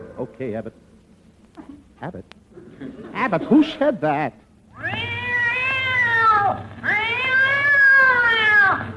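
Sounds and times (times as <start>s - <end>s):
speech: 0.2s - 0.9s, 1.6s - 5.0s
cat yowling after tail stepped on: 4.7s - 8.9s.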